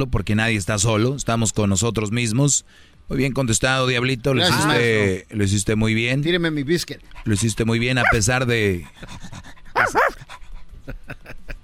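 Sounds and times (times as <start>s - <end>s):
speech: 0.0s - 11.4s
dog panting: 7.0s - 10.8s.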